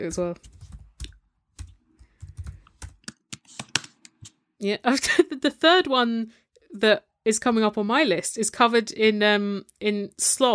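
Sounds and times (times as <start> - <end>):
speech: 0.0 - 0.6, 4.6 - 10.5
typing on a computer keyboard: 0.4 - 4.0.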